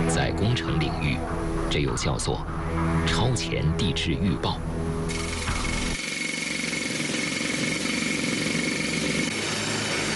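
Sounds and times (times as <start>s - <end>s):
speech: 0.1s - 5.3s
drill boring holes into tunnel rock wall beside a hard-rock tunnel boring machine: 5.1s - 10.1s.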